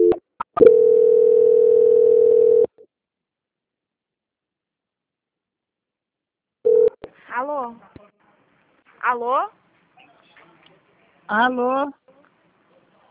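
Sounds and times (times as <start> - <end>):
telephone call transfer tone: 0.0 - 2.7, 6.7 - 7.0
speech: 9.1 - 9.6, 11.3 - 12.0.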